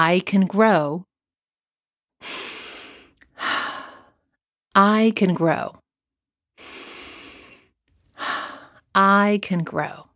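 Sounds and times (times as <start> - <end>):
speech: 0.0 - 1.1, 2.2 - 2.5, 4.8 - 5.8, 9.0 - 10.1
deep breath in and out: 2.2 - 4.2, 6.6 - 8.8.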